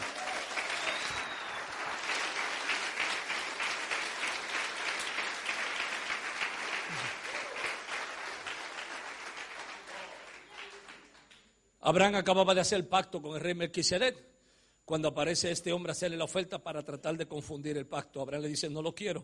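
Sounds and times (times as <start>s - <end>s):
congregation clapping hands: 0.0s - 11.5s
speech: 11.9s - 14.3s, 14.9s - 19.2s.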